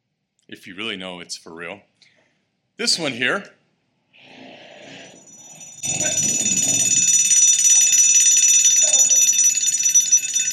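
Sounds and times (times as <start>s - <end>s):
speech: 0.5s - 2.1s, 2.8s - 3.6s
school fire alarm bell ringing: 4.9s - 10.5s.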